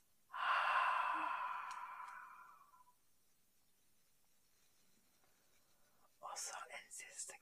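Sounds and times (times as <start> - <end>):
slow exhale through the mouth after a breath in through the nose: 0.3 - 2.8.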